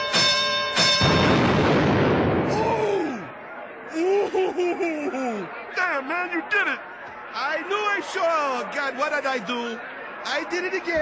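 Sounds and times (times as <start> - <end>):
hand grenade exploding in a boxing ring: 1.0 - 2.9
laughter: 3.0 - 6.9
speech: 7.5 - 11.0.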